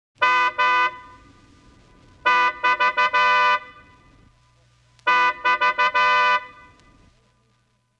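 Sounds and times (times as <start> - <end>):
sports car horn: 0.2 - 4.4, 5.0 - 7.2.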